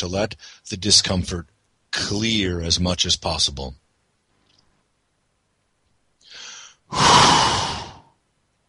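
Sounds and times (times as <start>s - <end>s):
speech: 0.0s - 3.8s
deep breathing during a guided breathing exercise: 6.2s - 8.1s.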